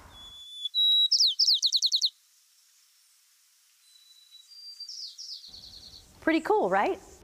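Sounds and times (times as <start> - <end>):
sparrow singing in San Francisco: 0.0 - 2.2, 3.8 - 6.2
speech: 6.2 - 7.1.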